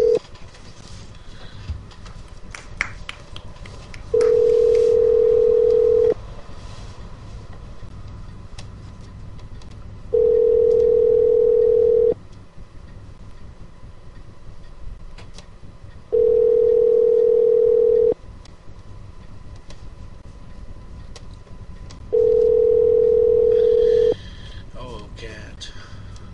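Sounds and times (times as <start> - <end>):
phone line ringback tones ringing unanswered: 0.0 - 0.2, 4.2 - 6.2, 10.1 - 12.2, 16.1 - 18.2, 22.1 - 24.2.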